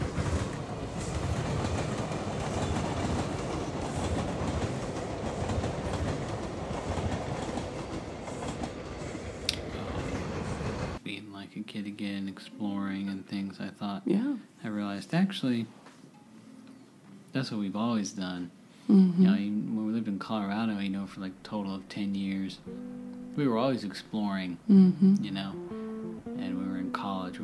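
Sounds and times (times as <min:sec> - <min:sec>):
train rumbling past: 0:00.0 - 0:11.0, 0:19.7 - 0:24.5
train wheels clattering on the tracks: 0:00.0 - 0:11.0
speech: 0:11.8 - 0:14.2, 0:15.0 - 0:15.8, 0:17.4 - 0:25.8, 0:26.4 - 0:27.4.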